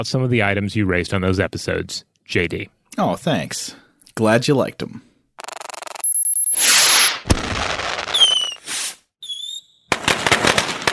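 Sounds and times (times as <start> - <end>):
speech: 0.0 - 5.1
fireworks bursting and crackling: 6.6 - 10.9.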